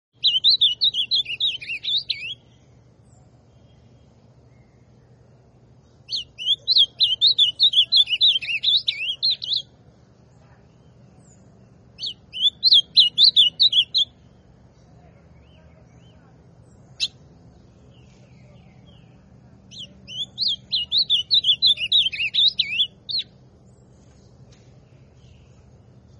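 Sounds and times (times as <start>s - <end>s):
ultramarine grosbeak singing swooping whistled phrases: 0.2s - 2.4s, 6.1s - 9.7s, 12.0s - 14.1s, 19.7s - 23.3s
steady low hum: 0.2s - 26.1s.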